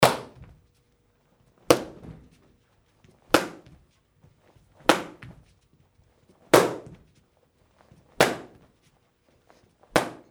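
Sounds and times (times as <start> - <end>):
karate kicks hitting kick pads: 0.0 - 0.6, 1.7 - 2.4, 3.3 - 3.8, 4.8 - 5.5, 6.5 - 7.1, 8.2 - 8.7, 10.0 - 10.3.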